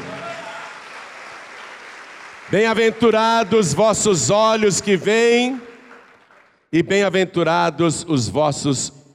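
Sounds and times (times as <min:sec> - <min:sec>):
audience applauding: 0:00.0 - 0:03.5, 0:05.1 - 0:06.6
speech: 0:02.5 - 0:05.7, 0:06.7 - 0:09.0.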